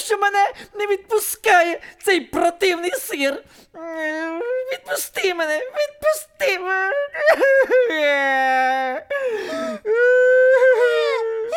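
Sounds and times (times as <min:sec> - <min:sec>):
speech: 0:00.1 - 0:11.1
person wailing and crying: 0:03.8 - 0:11.5
gasping breaths between sobs: 0:09.1 - 0:10.0.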